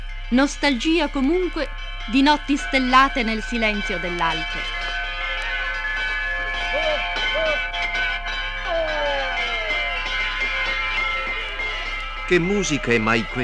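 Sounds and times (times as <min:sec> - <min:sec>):
tuned bronze bells ringing together: 0:00.0 - 0:13.4
speech: 0:00.3 - 0:04.8, 0:12.3 - 0:13.4.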